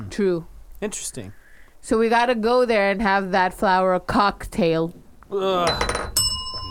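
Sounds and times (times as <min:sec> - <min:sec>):
speech: 0:00.2 - 0:05.9
shot glass clinking against a hard surface: 0:05.7 - 0:06.7.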